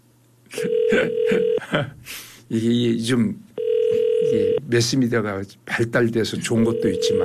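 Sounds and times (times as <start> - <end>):
unanswered phone call ringback tone: 0.6 - 1.6, 3.6 - 4.6, 6.6 - 7.2
speech: 0.6 - 3.5, 4.3 - 7.2.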